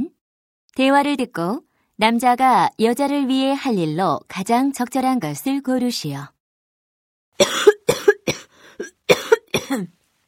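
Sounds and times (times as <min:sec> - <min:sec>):
speech: 0:00.8 - 0:06.4, 0:09.7 - 0:10.0
person coughing harshly: 0:07.4 - 0:10.0.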